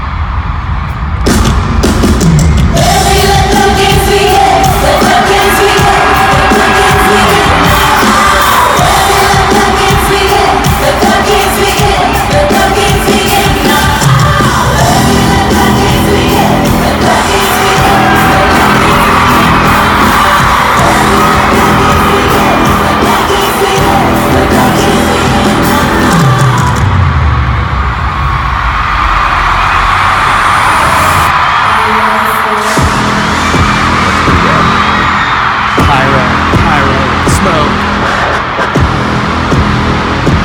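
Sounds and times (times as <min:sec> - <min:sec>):
huge concert crowd cheering, screaming and whooping: 0:00.0 - 0:40.4.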